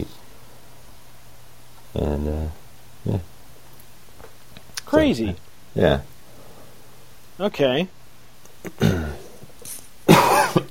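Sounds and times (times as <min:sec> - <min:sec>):
speech: 0:02.0 - 0:03.3, 0:04.9 - 0:06.1, 0:07.4 - 0:08.0, 0:08.6 - 0:09.2
person coughing with a throaty rasp: 0:08.6 - 0:09.3, 0:10.1 - 0:10.7.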